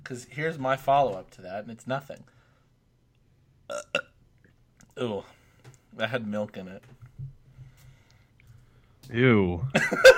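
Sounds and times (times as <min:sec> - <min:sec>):
speech: 0:00.1 - 0:02.4, 0:05.0 - 0:07.0, 0:09.1 - 0:10.1
person burping: 0:03.7 - 0:04.2.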